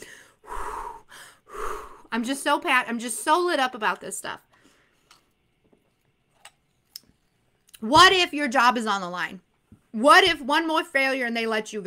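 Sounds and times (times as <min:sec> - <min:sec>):
heavy out-of-breath breathing: 0:00.0 - 0:02.1
speech: 0:02.1 - 0:04.5, 0:07.8 - 0:09.4, 0:10.0 - 0:11.8.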